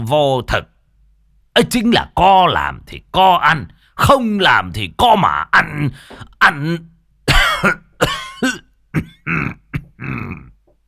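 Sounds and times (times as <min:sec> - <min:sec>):
speech: 0:00.1 - 0:00.7, 0:01.6 - 0:10.4
elderly man with dry hacking coughs: 0:07.3 - 0:10.6.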